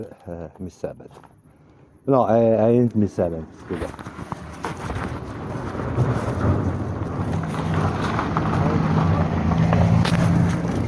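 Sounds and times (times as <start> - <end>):
speech: 0.0 - 1.4, 2.0 - 4.4
car passing by with engine and road roar: 5.2 - 10.8.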